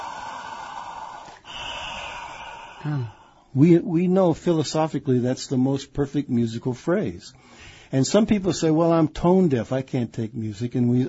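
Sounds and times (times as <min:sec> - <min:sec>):
deliberate breathing, inhaling and exhaling: 0:00.0 - 0:03.6, 0:07.4 - 0:07.9
voiced sigh: 0:00.0 - 0:03.6
speech: 0:02.8 - 0:11.0.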